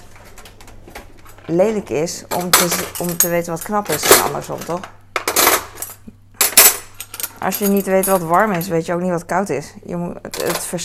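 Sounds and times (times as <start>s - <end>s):
speech: 1.5s - 5.0s, 7.4s - 10.8s
cutlery being put back into a drawer: 2.3s - 8.8s, 10.3s - 10.8s.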